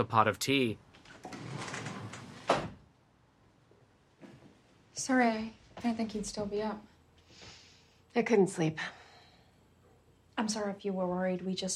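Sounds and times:
speech: 0.0 - 1.4, 5.1 - 6.9, 8.2 - 9.0, 10.4 - 11.7
sliding door opening into a suburban house: 1.0 - 2.8.

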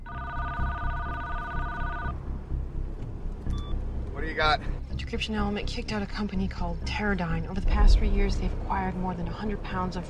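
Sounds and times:
phone ringing with a steady electronic trill: 0.0 - 2.2
constant low rumble: 0.0 - 10.0
speech: 4.3 - 10.0.

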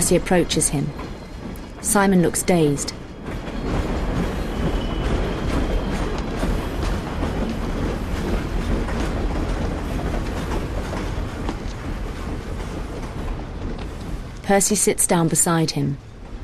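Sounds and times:
faint clacking of train wheels on rails: 0.0 - 16.4
train rumbling, pulling out of station: 0.0 - 16.4
speech: 0.1 - 1.1, 1.8 - 3.0, 14.5 - 16.1.

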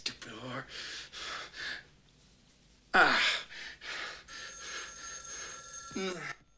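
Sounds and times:
speech: 0.5 - 1.2
man breathing heavily: 0.7 - 1.9, 3.1 - 5.8
telephone in a room ringing with a shrill electronic tone: 4.3 - 6.5.

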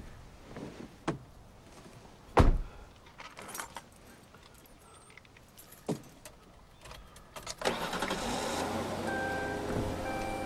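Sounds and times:
knocks and rustles: 0.5 - 7.6
car door shutting: 2.4 - 2.7, 7.6 - 10.4.

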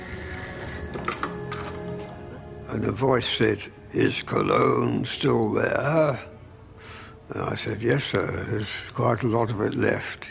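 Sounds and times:
secret scrambler telephone ringing with an electric bell tone: 0.0 - 2.5
speech: 2.7 - 6.3, 7.3 - 10.2.

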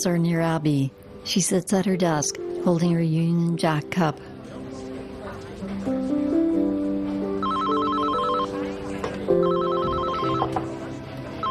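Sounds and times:
speech: 0.0 - 4.3
music: 0.0 - 11.4
telephone ringing with a fast electronic trill: 7.4 - 8.7, 9.3 - 11.4.

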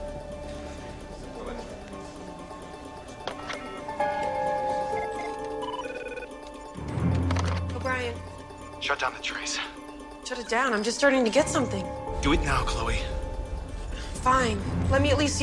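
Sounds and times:
telephone ringing with electronic tones: 3.1 - 7.6
speech: 8.9 - 13.2, 14.2 - 15.4.

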